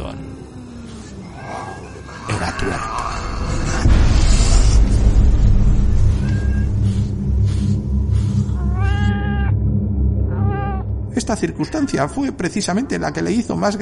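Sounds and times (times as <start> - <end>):
low rumbling drone: 0.0 - 13.8
cat meowing: 6.1 - 6.7, 8.6 - 9.5, 10.3 - 10.8
speech: 11.3 - 13.8.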